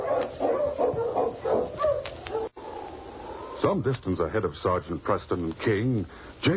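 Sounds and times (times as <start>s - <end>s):
husky barking excitedly as it sets off running: 0.0s - 2.9s
speech: 3.6s - 6.5s.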